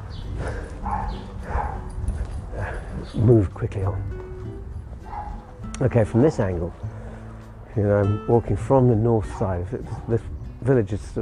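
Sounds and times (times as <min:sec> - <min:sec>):
small dogs barking: 0:00.8 - 0:02.3, 0:05.0 - 0:06.7, 0:09.2 - 0:10.2
speech: 0:03.1 - 0:04.2, 0:05.8 - 0:06.9, 0:07.7 - 0:11.1.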